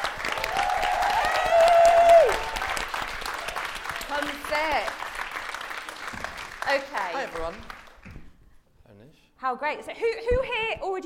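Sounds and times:
large crowd clapping in a big hall: 0.0s - 8.3s
speech: 9.5s - 11.0s.

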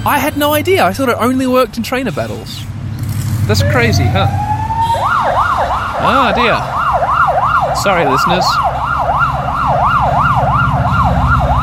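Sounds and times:
speech: 0.0s - 2.8s, 3.5s - 5.4s, 6.0s - 6.8s, 7.8s - 8.7s
low rumble of idling traffic and engines: 0.0s - 11.6s
ambulance wailing emergency siren passing cars at a red light: 3.5s - 11.6s.

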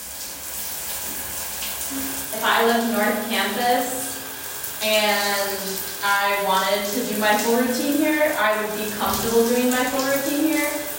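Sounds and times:
shower running in a second-floor campus bathroom: 0.0s - 10.9s
speech: 1.9s - 4.1s, 4.8s - 10.8s.

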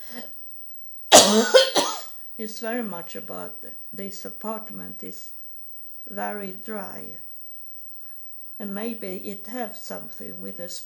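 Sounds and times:
single loud raspy cough: 1.2s - 2.1s
speech: 2.4s - 5.4s, 6.1s - 7.2s, 8.6s - 10.8s.

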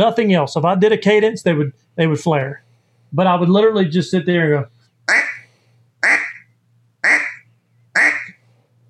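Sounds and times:
speech: 0.0s - 5.3s
faint low hum: 0.0s - 8.8s
loud nasal duck quacks blown on a duck call: 5.1s - 8.4s.

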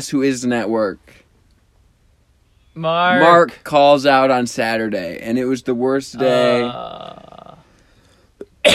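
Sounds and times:
speech: 0.0s - 1.2s, 2.8s - 7.2s
short throaty catch: 6.2s - 7.8s
loud harsh cough: 8.6s - 8.7s.

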